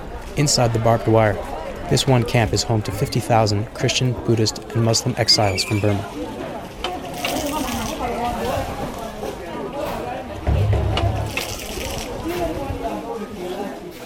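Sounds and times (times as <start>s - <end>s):
crowd of refugees chattering: 0.0s - 14.0s
speech: 0.4s - 6.4s
water pouring from a well into old metal petrol cans: 7.1s - 8.2s, 11.3s - 12.3s
thud: 10.4s - 12.5s.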